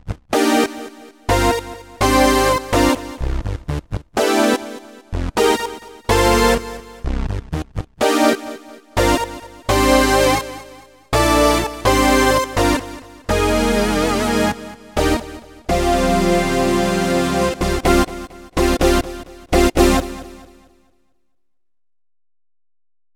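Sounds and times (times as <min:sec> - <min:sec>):
synth brass: 0:00.3 - 0:03.4, 0:04.2 - 0:07.1, 0:08.2 - 0:20.6.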